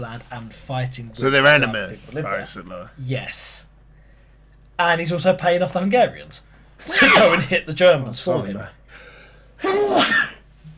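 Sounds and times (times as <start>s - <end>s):
speech: 0.0s - 3.7s, 4.8s - 10.3s
single loud sneeze: 6.8s - 7.5s, 9.6s - 10.4s.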